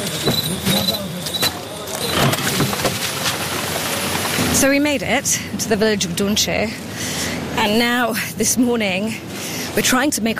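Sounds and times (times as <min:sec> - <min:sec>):
rattling clunking jolts: 0:00.0 - 0:04.8
aid truck rumbling along a rough muddy road: 0:00.0 - 0:10.3
speech: 0:00.2 - 0:00.7, 0:04.6 - 0:10.3
splashy crackles: 0:01.9 - 0:04.8.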